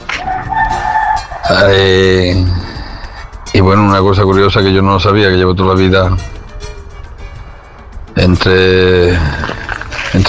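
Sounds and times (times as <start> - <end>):
rooster crowing: 0.1 - 1.5
speech: 1.5 - 2.6, 3.6 - 6.4, 8.2 - 10.2.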